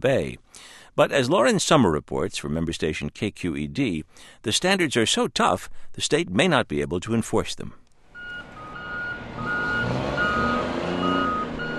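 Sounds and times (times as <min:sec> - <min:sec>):
speech: 0:00.0 - 0:07.8
heavy trucks and machinery rumbling at a busy container port: 0:08.1 - 0:11.7
repeating reversing beep: 0:08.2 - 0:11.7.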